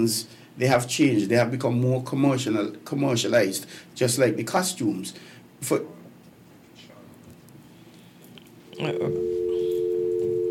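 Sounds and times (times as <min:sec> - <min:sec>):
speech: 0:00.0 - 0:06.0, 0:08.8 - 0:09.4
phone line dial tone after a caller's call dropped: 0:08.8 - 0:10.4.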